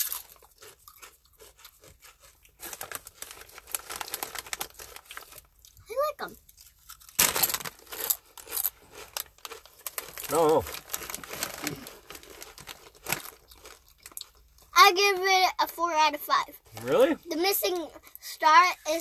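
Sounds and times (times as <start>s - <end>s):
cheese-flavored chips being bitten and chewed: 0.0s - 14.7s
speech: 6.2s - 6.5s, 10.3s - 10.8s, 14.9s - 18.9s.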